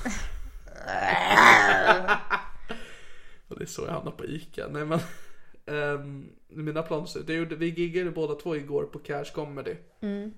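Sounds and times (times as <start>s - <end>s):
person imitating a lion roar: 0.7s - 2.2s
laughter: 1.3s - 2.5s
speech: 3.7s - 10.3s.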